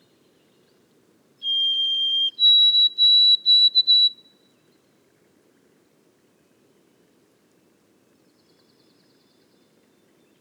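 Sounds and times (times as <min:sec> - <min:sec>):
White-throated sparrow whistled song in boreal forest of Haute-Côte-Nord: 0:01.4 - 0:04.2.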